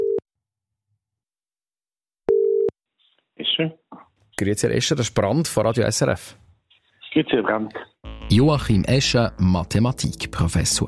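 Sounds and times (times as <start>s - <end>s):
telephone line ringing tone: 2.3s - 2.7s
speech: 3.6s - 6.4s, 7.1s - 10.8s.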